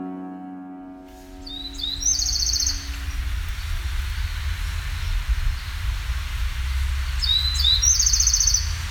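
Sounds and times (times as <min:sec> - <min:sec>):
low outdoor rumble: 0:01.2 - 0:08.8
Bewick's wren Thryomanes bewickii singing trilled phrases: 0:01.3 - 0:05.8, 0:06.7 - 0:08.8.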